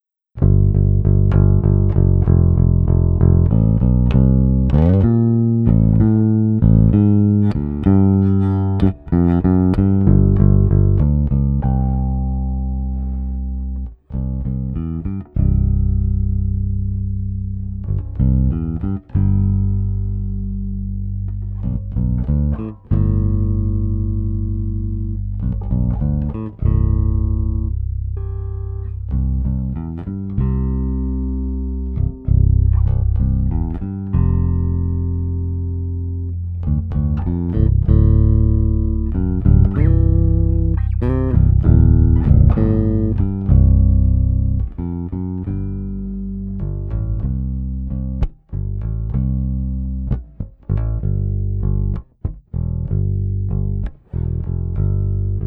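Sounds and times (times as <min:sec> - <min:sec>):
blues bass track: 0:00.0 - 0:55.4.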